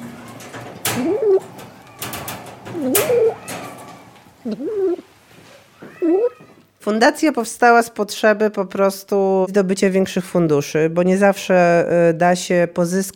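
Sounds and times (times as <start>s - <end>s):
cats meowing: 0.0s - 6.7s
rustling and clattering: 0.0s - 6.8s
speech: 1.0s - 1.6s, 2.8s - 3.4s, 4.4s - 5.1s, 6.0s - 13.1s.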